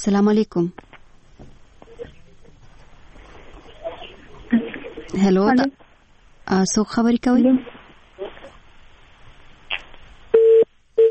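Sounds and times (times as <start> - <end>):
speech: 0.0 - 0.8, 4.5 - 5.8, 6.5 - 7.8
faint crackly telephone line noise: 0.0 - 10.4
telephone busy tone beeps: 10.4 - 11.0.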